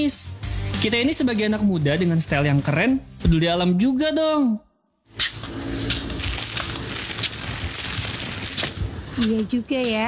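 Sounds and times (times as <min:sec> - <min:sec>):
speech: 0:00.0 - 0:05.4, 0:09.2 - 0:10.0
plastic cup being crushed and thrown into a bin: 0:06.0 - 0:08.8.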